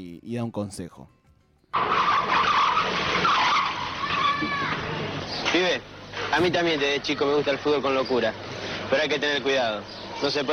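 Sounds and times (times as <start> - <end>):
speech: 0.0 - 3.6, 4.4 - 10.5
car tires skidding as a car brakes hard: 1.8 - 7.5.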